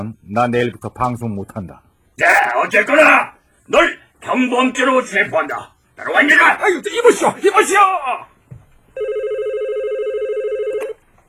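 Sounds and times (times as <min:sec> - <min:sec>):
speech: 0:00.0 - 0:08.3
low noise: 0:00.0 - 0:11.2
telephone ringing with electronic trill: 0:09.0 - 0:11.2.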